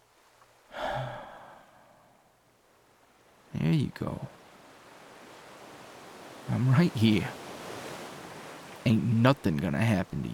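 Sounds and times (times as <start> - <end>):
slow deep breath: 0.7 - 2.4
speech: 3.7 - 4.4, 6.5 - 7.4, 8.8 - 10.3.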